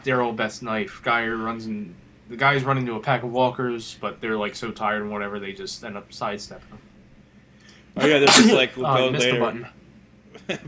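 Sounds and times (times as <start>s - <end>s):
speech: 0.0s - 6.9s, 8.0s - 9.8s, 10.4s - 10.6s
sneeze: 8.0s - 8.7s
laughter: 10.4s - 10.6s.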